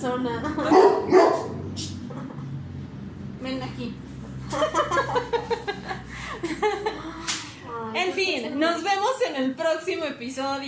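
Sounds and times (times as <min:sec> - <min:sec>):
speech: 0:00.0 - 0:01.4, 0:03.6 - 0:05.3, 0:08.2 - 0:10.6
dog barking at a lamp: 0:00.7 - 0:01.6
laughter: 0:04.5 - 0:07.2.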